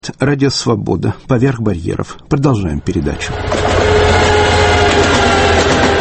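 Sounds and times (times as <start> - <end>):
speech: 0.0 - 4.4
passenger train rumbling: 2.3 - 5.9.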